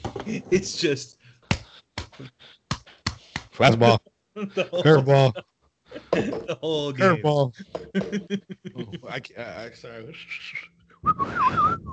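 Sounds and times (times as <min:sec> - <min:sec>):
speech: 0:00.2 - 0:01.2, 0:02.2 - 0:02.6, 0:03.6 - 0:05.5, 0:06.1 - 0:11.9
laughter: 0:03.6 - 0:05.4, 0:06.0 - 0:10.5
whistled phrase: 0:10.2 - 0:11.9.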